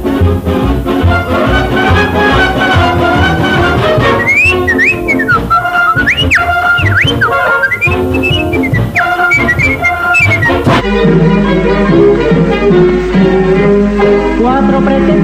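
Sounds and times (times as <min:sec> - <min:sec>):
full musical backing: 0:00.0 - 0:15.2
short whistled sign-off melody with rising and falling glides: 0:01.3 - 0:13.0.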